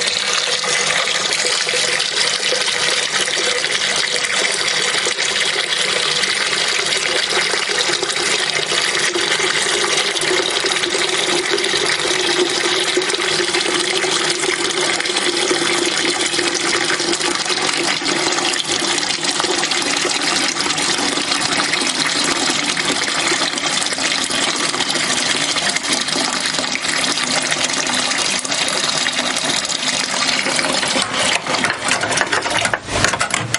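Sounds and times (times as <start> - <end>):
water running from a tap into a plugged kitchen sink: 0.0 - 33.5.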